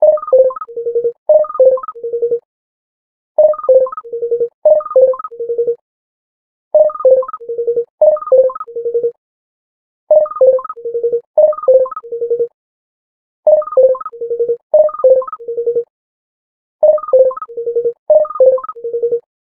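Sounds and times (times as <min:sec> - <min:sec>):
Sky IM-T100K VEGA No.5 phone ringtone: 0:00.0 - 0:02.4, 0:03.4 - 0:05.8, 0:06.8 - 0:09.2, 0:10.2 - 0:12.6, 0:13.5 - 0:15.8, 0:16.8 - 0:19.3.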